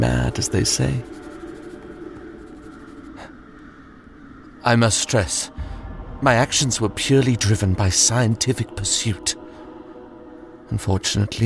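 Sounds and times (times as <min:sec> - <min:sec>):
speech: 0:00.0 - 0:01.2, 0:04.6 - 0:09.4, 0:10.7 - 0:11.4
steady low hum: 0:00.0 - 0:11.4
pen scratching across paper: 0:00.4 - 0:01.8.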